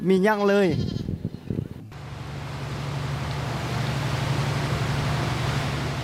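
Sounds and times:
goat bleating: 0.2 - 1.2
low engine drone: 1.9 - 6.0.

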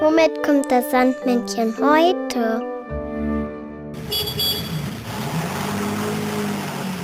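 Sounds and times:
speech: 0.2 - 2.7
car engine humming and rumbling as the vehicle drives along: 4.0 - 7.0.

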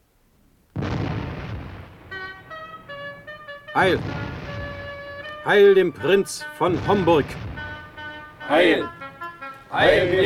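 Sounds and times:
single loud cannon blast of a salute: 0.8 - 2.8, 3.8 - 5.5, 6.7 - 8.1
speech: 3.8 - 4.3, 5.4 - 7.5, 8.5 - 9.0, 9.7 - 10.2.

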